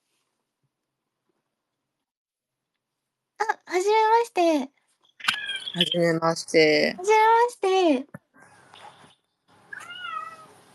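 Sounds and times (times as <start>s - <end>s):
speech: 3.7s - 4.8s, 5.8s - 8.2s
cat meowing indoors: 5.3s - 5.8s, 9.7s - 10.6s.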